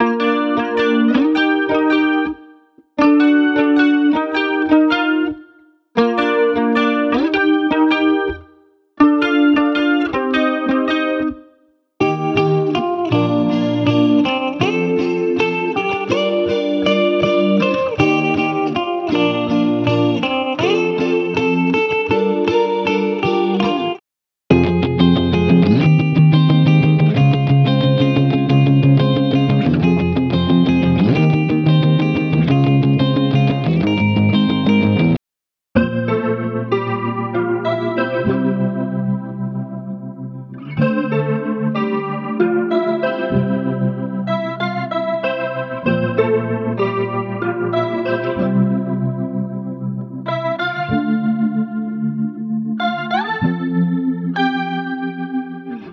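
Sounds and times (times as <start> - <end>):
guitar loops: 0.0 - 35.2, 35.8 - 55.9.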